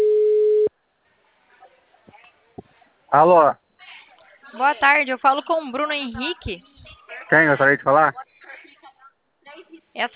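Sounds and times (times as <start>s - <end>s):
mid-pitched telephone call tone after pressing the call button: 0.0s - 0.7s
speech: 3.1s - 3.6s, 4.6s - 6.7s, 7.3s - 8.3s, 10.0s - 10.1s.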